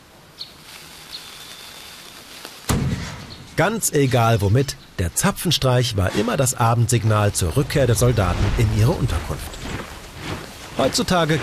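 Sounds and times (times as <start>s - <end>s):
soft bird chirps: 0.3s - 2.4s
cannon shot: 2.7s - 3.4s
speech: 3.6s - 9.6s, 10.8s - 11.4s.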